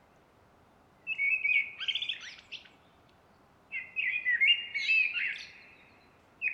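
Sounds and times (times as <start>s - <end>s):
Common blackbird Turdus merula singing: 1.1s - 2.7s, 3.7s - 6.5s.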